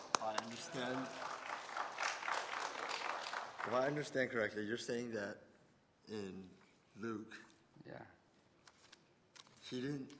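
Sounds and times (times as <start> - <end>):
audience applause: 0.0 - 4.1
speech: 0.3 - 1.3, 3.6 - 5.5, 6.1 - 8.2, 9.7 - 10.1.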